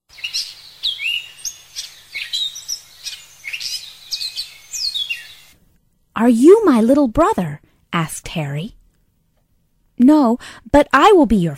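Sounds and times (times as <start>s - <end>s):
birds chirping and tweeting: 0.1s - 5.6s
faint hum: 0.1s - 11.5s
speech: 6.2s - 8.8s, 10.0s - 11.5s.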